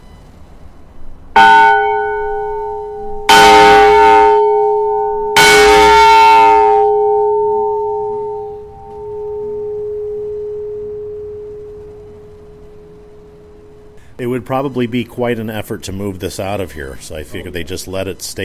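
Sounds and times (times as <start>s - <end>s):
large heavy fire warning bell clanging: 1.4s - 14.0s
speech: 14.5s - 18.4s.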